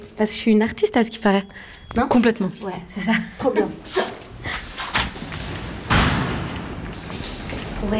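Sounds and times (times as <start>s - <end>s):
speech: 0.2s - 4.2s
heavy door thud: 5.0s - 6.8s.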